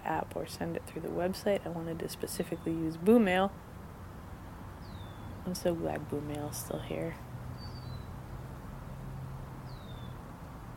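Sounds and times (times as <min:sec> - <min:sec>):
steady low outdoor rumble: 0:00.0 - 0:10.7
speech: 0:00.1 - 0:03.7, 0:05.5 - 0:07.2
bird chirping outdoors: 0:04.7 - 0:08.2, 0:09.6 - 0:10.2.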